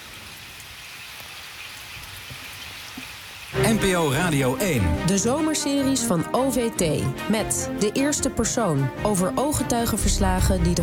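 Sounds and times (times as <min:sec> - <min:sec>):
heavy pouring rain: 0:00.0 - 0:04.2
speech: 0:03.7 - 0:10.8.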